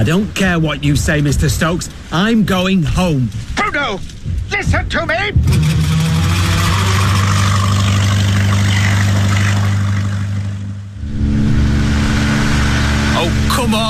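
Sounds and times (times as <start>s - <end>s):
speech: 0.0s - 6.0s, 13.2s - 13.8s
motorboat engine running: 5.4s - 13.8s.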